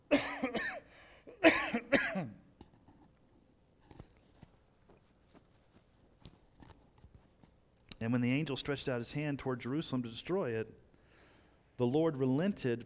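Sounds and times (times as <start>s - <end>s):
person coughing: 0.1s - 2.5s
rustling: 3.8s - 7.7s
speech: 8.1s - 10.9s, 11.8s - 12.8s.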